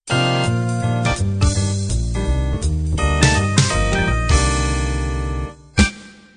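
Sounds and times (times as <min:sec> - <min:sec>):
B3 organ jazz ending: 0:00.1 - 0:05.9.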